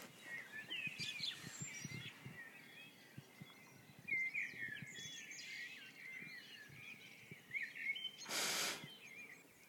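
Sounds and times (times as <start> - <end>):
birds chirping and warbling at dawn: 0.0 - 9.6.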